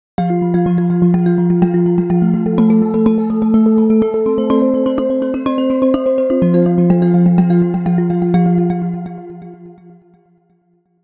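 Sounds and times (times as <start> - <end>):
sound with arpeggiator: 0.2 - 9.8.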